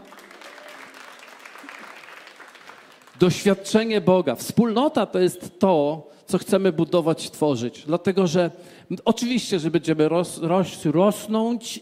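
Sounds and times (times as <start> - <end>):
audience applause: 0.0 - 3.4
speech: 3.2 - 11.8.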